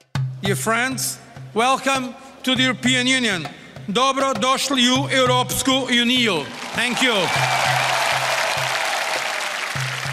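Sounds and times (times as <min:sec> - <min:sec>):
speech: 0:00.4 - 0:07.8
large crowd applauding at a celebration: 0:06.5 - 0:10.1.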